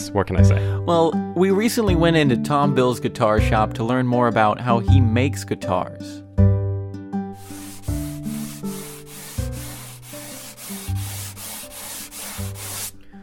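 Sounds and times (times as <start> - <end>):
speech: 0.0 - 6.2
low music: 0.0 - 13.2
sandpaper sanding wood: 7.4 - 13.0.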